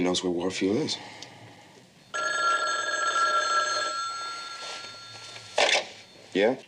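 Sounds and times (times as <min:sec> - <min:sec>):
speech: 0:00.0 - 0:01.3, 0:06.4 - 0:06.6
telephone bell ringing in an office: 0:02.1 - 0:06.5.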